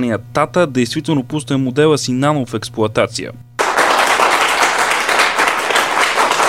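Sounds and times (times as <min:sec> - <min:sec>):
speech: 0:00.0 - 0:03.5
crowd applauding: 0:03.6 - 0:06.4.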